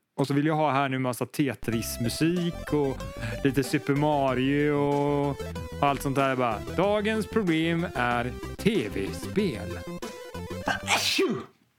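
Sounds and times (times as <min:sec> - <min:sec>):
speech: 0:00.2 - 0:10.0, 0:10.9 - 0:11.6
sneeze: 0:10.7 - 0:11.6.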